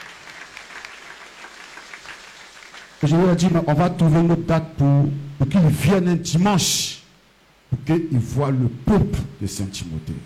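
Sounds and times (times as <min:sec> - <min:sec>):
church congregation applauding: 0:00.0 - 0:03.6
speech: 0:03.0 - 0:07.0, 0:07.7 - 0:10.2.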